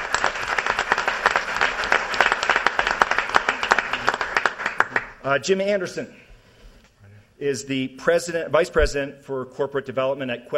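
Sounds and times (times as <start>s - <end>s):
audience applause: 0.0s - 5.2s
speech: 5.2s - 6.2s, 7.4s - 10.5s.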